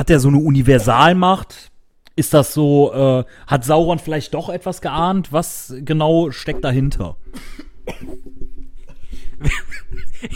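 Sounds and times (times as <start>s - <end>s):
speech: 0.0s - 8.6s, 9.4s - 10.3s
person coughing sharply: 7.2s - 9.1s
laughter: 9.4s - 10.3s.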